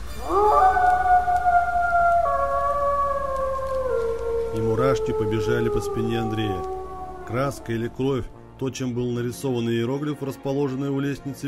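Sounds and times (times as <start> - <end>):
eerie howl from below a lighthouse: 0.1 - 8.5
speech: 4.8 - 11.4.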